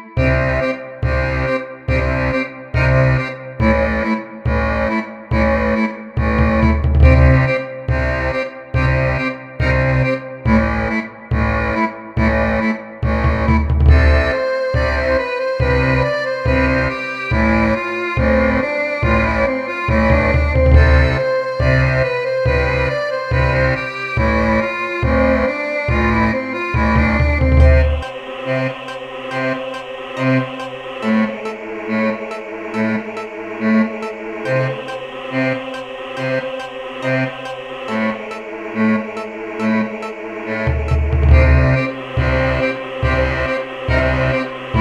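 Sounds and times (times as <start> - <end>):
strings playing: 0.2 - 44.8.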